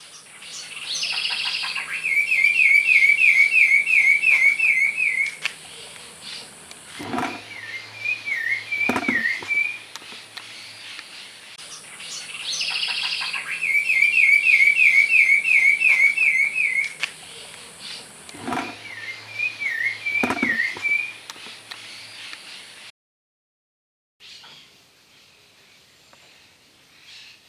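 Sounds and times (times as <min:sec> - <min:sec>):
zorzal colorado thrush calling: 0:00.8 - 0:11.4, 0:12.0 - 0:21.3.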